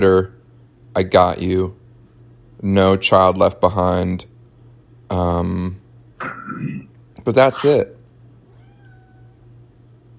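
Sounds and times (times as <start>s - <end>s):
speech: 0.0s - 0.4s, 1.0s - 1.8s, 2.6s - 4.3s, 5.1s - 8.0s
cat meowing: 8.5s - 9.4s.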